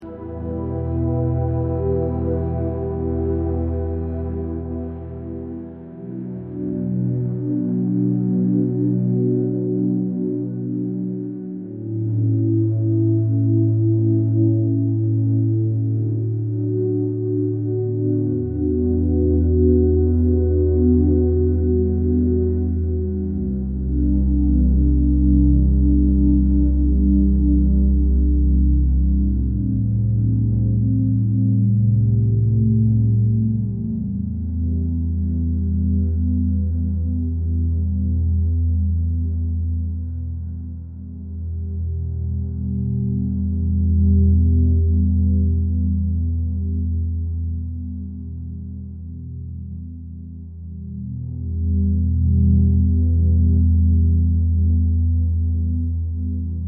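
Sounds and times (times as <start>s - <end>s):
ambient music: 0.0s - 56.6s.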